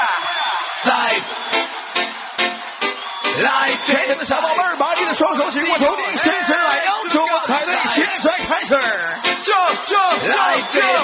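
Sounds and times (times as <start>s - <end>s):
concert crowd screaming and cheering: 0.0s - 11.0s
speech: 3.4s - 6.5s.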